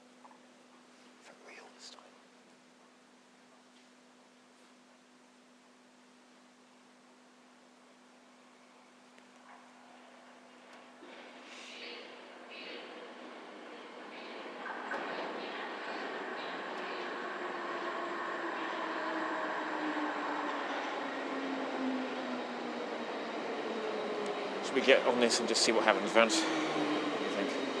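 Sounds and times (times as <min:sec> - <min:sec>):
train arriving at station: 0:12.6 - 0:27.7
speech: 0:24.8 - 0:26.6.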